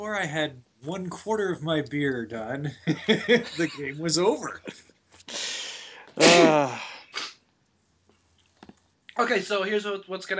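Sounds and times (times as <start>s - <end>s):
speech: 0.0s - 5.5s, 6.2s - 6.9s, 9.2s - 10.3s
single sharp sneeze: 5.3s - 7.4s.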